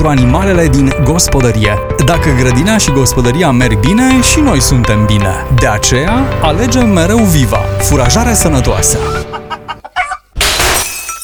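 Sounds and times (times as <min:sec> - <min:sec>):
speech: 0:00.0 - 0:09.2
cheap glass shattering: 0:10.4 - 0:11.2.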